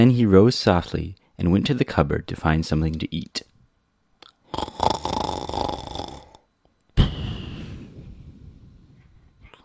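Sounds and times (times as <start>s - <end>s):
speech: 0.0s - 3.5s
person imitating loud rasping snores of an old witch: 4.4s - 7.6s.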